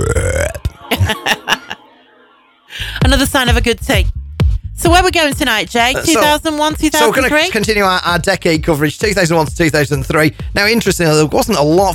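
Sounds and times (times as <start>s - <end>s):
short gulping bursts of throaty sound: 0.0s - 0.8s
loud belch after a meal: 0.0s - 1.2s
laughter: 0.8s - 1.9s
speech: 3.1s - 4.2s, 4.8s - 11.9s.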